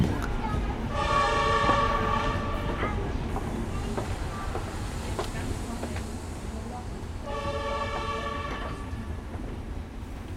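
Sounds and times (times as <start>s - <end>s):
regional diesel train rumbling on single-track non-electrified line in Germany: 0.0s - 10.3s
regional diesel train loud harmonic horn blast: 0.9s - 2.8s, 7.2s - 9.1s.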